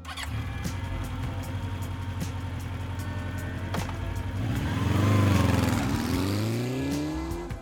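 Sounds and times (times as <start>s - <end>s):
sport bike engine idling and revving: 0.0s - 7.6s.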